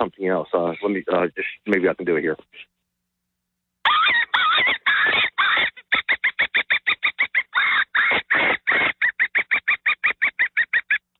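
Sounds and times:
speech: 0.0 - 2.8
hand-blown open-reed predator call imitating dying animal and woodpecker: 3.9 - 11.1.

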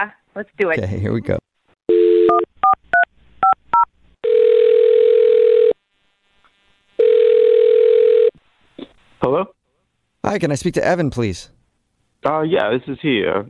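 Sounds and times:
speech: 0.0 - 2.5, 10.3 - 11.6, 12.2 - 13.4
telephone dial tone: 1.9 - 2.8, 4.2 - 5.8, 7.0 - 8.3.

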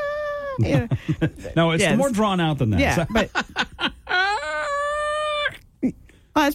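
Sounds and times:
speech: 0.6 - 4.0, 5.8 - 6.5
person imitating a laughing chicken: 4.1 - 6.0.

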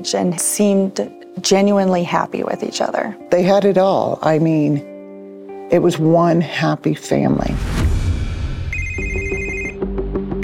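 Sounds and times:
speech: 0.0 - 4.9, 5.7 - 7.9
telephone ringing with bright electronic tone: 8.7 - 9.8.

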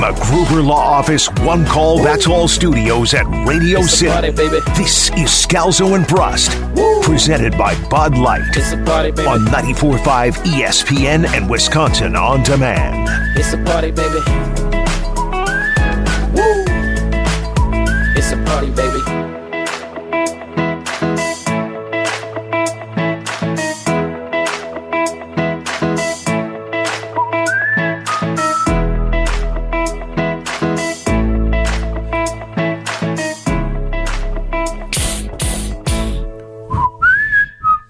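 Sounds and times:
speech: 0.0 - 14.6, 18.2 - 19.4
instrumental backing with punchy bass and rhythmic percussion: 0.0 - 37.1
whistled melody: 1.7 - 10.3, 12.7 - 19.2, 27.1 - 28.9, 36.7 - 37.8.

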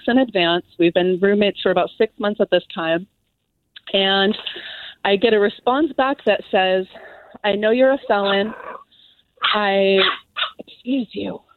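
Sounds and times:
speech: 0.1 - 3.2, 3.9 - 8.7, 9.4 - 11.5
two-month-old female puppy whining cry: 8.0 - 8.8, 9.4 - 10.6
two-month-old female puppy yips and whimpers: 9.4 - 10.6.

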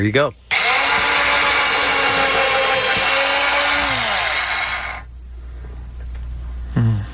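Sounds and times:
quiet hum: 0.0 - 7.1
power drill whirring: 0.5 - 5.1.

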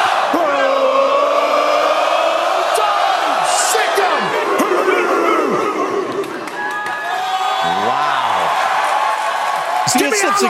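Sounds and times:
large stadium crowd chanting and cheering: 0.0 - 10.4
whoops and shouts from a stadium crowd: 3.4 - 10.4.

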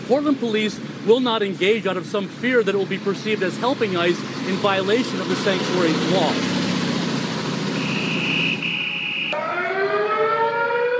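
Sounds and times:
constant rumbling noise: 0.0 - 7.7
speech: 0.1 - 6.6
sirens blaring at midnight in Portland: 7.7 - 10.9.

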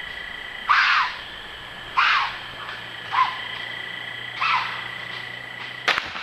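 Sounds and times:
faint steady hum: 0.0 - 6.2
deer screaming: 0.6 - 3.5, 4.4 - 4.8.

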